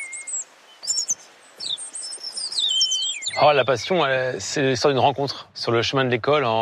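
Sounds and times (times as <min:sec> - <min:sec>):
person whistling imitations of bird calls: 0:00.0 - 0:03.4
speech: 0:03.4 - 0:06.6.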